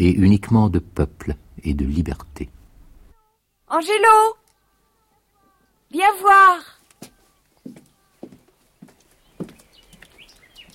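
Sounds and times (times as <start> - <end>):
speech: 0.0 - 2.6, 3.7 - 4.4, 5.9 - 7.8
horse hooves clip-clopping at a slow walk: 6.9 - 10.7.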